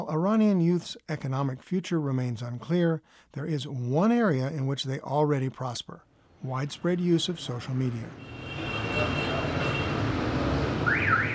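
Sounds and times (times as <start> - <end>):
speech: 0.0 - 9.2
dense traffic noise rumbling: 6.1 - 11.3
car horns honking in a street packed with cars: 8.0 - 11.3.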